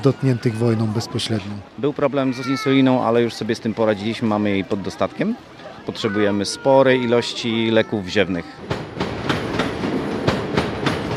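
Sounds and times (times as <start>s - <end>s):
speech: 0.0s - 8.9s
train rolling at a railway station: 8.6s - 11.1s
train wheels clacking over rail joints: 8.6s - 11.1s.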